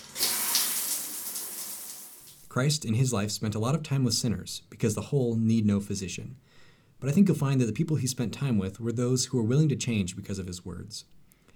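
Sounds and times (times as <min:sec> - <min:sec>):
shower water running: 0:00.0 - 0:02.5
speech: 0:02.6 - 0:11.2.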